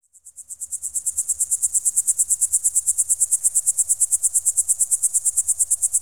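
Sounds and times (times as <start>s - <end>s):
cricket high fast pulsing chirp in the countryside: 0.1s - 6.0s.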